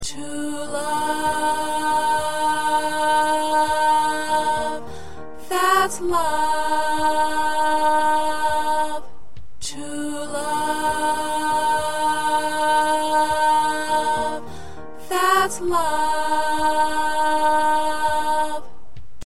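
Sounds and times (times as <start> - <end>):
second alto choir section singing: 0.0 - 19.0.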